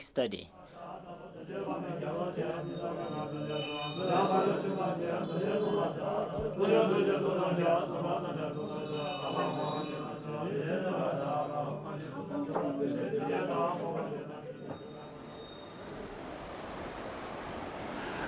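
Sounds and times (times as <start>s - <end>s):
speech: 0.0s - 15.0s
fast river torrent rushing: 15.7s - 18.2s.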